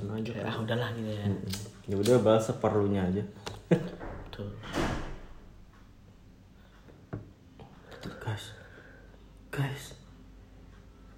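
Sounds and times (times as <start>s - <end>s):
speech: 0.2s - 4.8s
door opening or shutting with a loud rushing thud: 3.9s - 5.5s.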